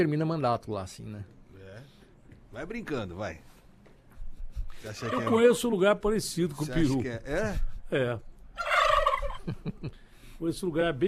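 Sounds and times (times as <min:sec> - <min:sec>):
speech: 0:00.0 - 0:01.4, 0:02.5 - 0:03.5, 0:04.8 - 0:08.7, 0:09.5 - 0:11.0
turkey gobbling: 0:05.0 - 0:05.5, 0:08.6 - 0:09.5.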